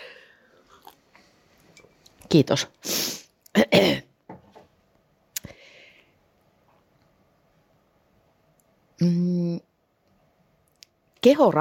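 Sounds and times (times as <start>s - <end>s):
speech: 2.3s - 3.0s, 3.6s - 4.1s, 11.2s - 11.5s
person coughing from dust in throat: 3.5s - 4.1s.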